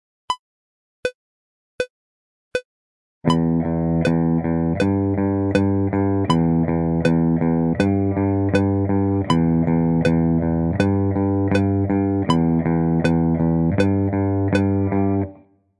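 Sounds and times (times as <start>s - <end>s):
strings picking without bridge mute: 3.3s - 15.4s.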